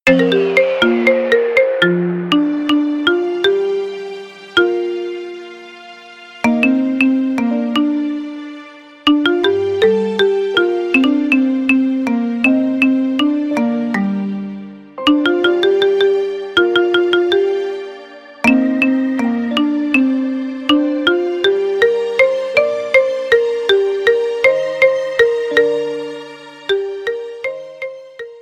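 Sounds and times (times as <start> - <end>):
marimba melody: 0.0 - 5.6, 6.4 - 8.4, 9.1 - 28.3.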